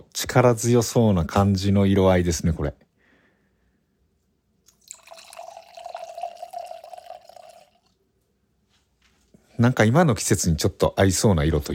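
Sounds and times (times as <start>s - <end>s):
speech: 0.2s - 2.8s, 9.6s - 11.7s
red wine pouring into a glass: 4.7s - 8.0s.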